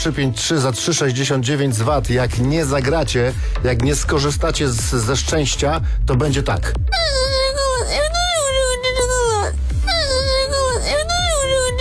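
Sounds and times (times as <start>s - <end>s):
speech: 0.0s - 7.2s
crying sound effect of loud wavering wails: 6.9s - 11.8s.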